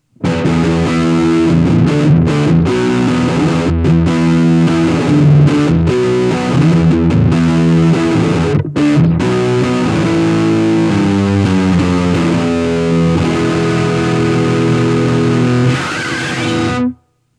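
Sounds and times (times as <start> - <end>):
distorted guitar amp: 0.0 - 17.0.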